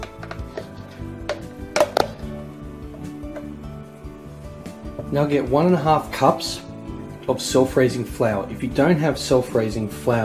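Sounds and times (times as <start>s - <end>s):
utensil knocks and clinks against a mixing bowl: 0.0s - 2.2s
speech: 5.1s - 6.6s, 7.3s - 10.2s.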